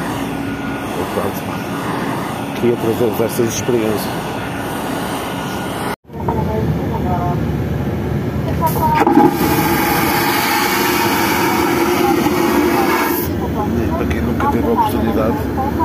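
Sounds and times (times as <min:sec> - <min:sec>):
airliner engines running on an airport apron: 0:00.0 - 0:15.8
speech: 0:01.2 - 0:02.0, 0:02.6 - 0:04.4.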